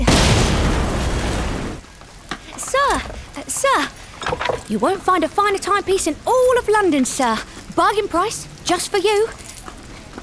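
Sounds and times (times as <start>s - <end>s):
grenade explosion in a video game: 0.0s - 1.8s
speech: 4.7s - 9.4s.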